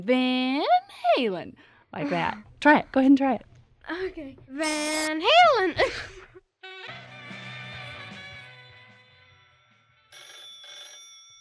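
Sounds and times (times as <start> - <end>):
speech: 0.0 - 0.5, 1.2 - 6.2
telephone ringing with a dense buzzing electronic tone: 10.1 - 11.3.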